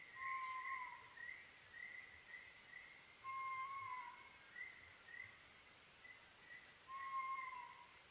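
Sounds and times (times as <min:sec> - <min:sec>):
Oriental scops owl repeating a short hooting phrase at night: 0:00.2 - 0:01.2, 0:03.2 - 0:04.4, 0:06.9 - 0:07.9.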